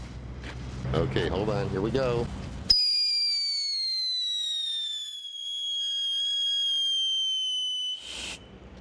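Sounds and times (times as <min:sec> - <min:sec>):
speech: 0:01.0 - 0:02.5
whistling fireworks shrieking with a falling high-pitched tone: 0:02.7 - 0:08.7.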